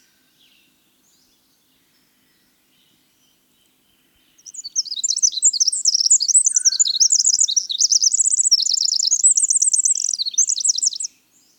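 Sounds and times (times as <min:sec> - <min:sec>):
winter wren song: 0:03.3 - 0:11.5.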